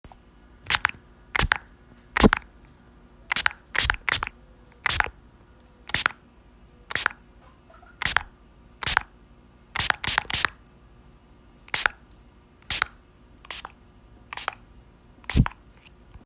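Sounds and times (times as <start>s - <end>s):
spray bottle spraying: 0.7s - 1.6s, 2.2s - 2.4s, 3.3s - 4.3s, 4.9s - 5.1s, 5.9s - 6.1s, 6.9s - 7.1s, 8.0s - 9.0s, 9.8s - 10.5s, 11.7s - 12.0s, 12.7s - 12.9s, 13.5s - 13.7s, 14.3s - 14.6s, 15.3s - 15.6s.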